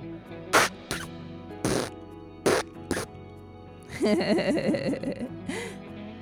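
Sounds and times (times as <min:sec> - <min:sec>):
buzzy wobbling fart with short sharp puffs: 0:00.5 - 0:03.1
laughter: 0:03.9 - 0:05.8.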